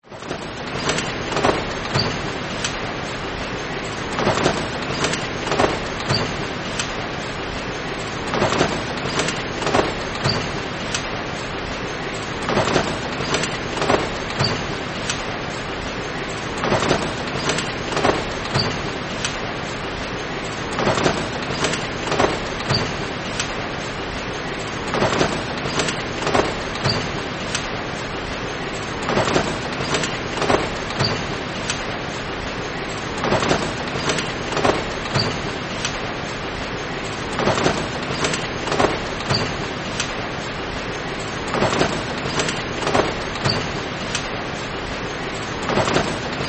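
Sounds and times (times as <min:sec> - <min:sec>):
brewery plant packaging equipment running: 0:00.0 - 0:46.4.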